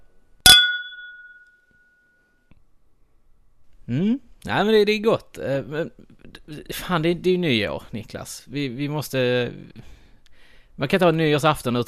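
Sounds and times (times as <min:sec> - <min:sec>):
champagne glasses clinking in a New Year's Eve toast: 0:00.5 - 0:01.4
speech: 0:03.9 - 0:10.0, 0:10.8 - 0:11.8.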